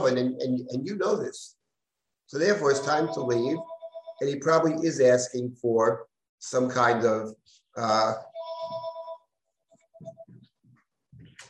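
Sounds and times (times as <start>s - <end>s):
speech: 0.1s - 1.6s, 2.3s - 8.8s
telephone ringtone: 2.5s - 4.2s.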